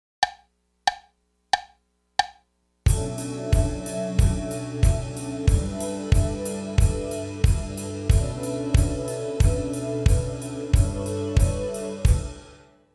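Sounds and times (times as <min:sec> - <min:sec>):
bass ride cymbal: 0:02.9 - 0:12.4
drums: 0:02.9 - 0:12.5.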